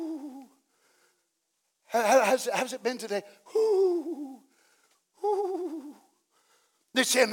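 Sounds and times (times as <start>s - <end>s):
person voicing a soft cooing ooh like a bird: 0.0s - 0.5s, 3.5s - 4.4s, 5.2s - 6.0s
speech: 1.9s - 4.3s, 7.0s - 7.3s.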